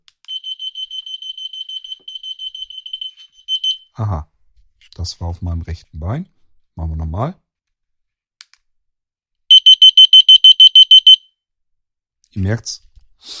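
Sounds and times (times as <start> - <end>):
electronic alarm beeping from a receiver: 0.3 - 3.8, 9.5 - 11.3
speech: 4.0 - 4.3, 5.0 - 7.4, 12.4 - 13.3.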